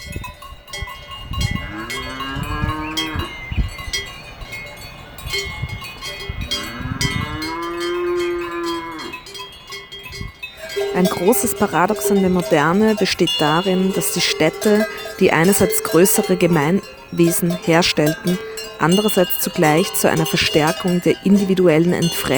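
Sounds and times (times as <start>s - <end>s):
many cowbells clanging on cows: 0.0s - 22.3s
cows mooing long and low: 1.5s - 3.4s, 6.4s - 9.3s, 10.6s - 22.3s
speech: 11.0s - 22.3s.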